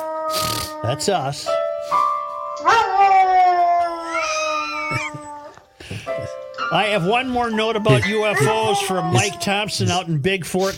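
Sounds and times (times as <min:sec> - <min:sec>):
dog howling: 0:00.0 - 0:01.3, 0:02.6 - 0:05.6, 0:07.0 - 0:10.1
speech: 0:00.3 - 0:02.0, 0:06.7 - 0:10.7
laughter: 0:04.7 - 0:06.4, 0:07.6 - 0:10.7.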